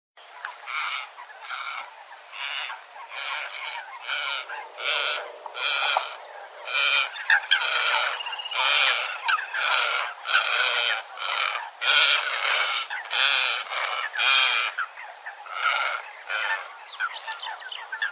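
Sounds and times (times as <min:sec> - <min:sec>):
harsh nasal bird calls: 0:00.3 - 0:18.0.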